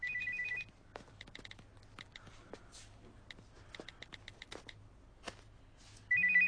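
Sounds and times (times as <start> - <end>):
phone ringtone ringing: 0.0 - 0.7, 6.1 - 6.4
clicks and taps: 0.9 - 2.3, 3.2 - 5.4.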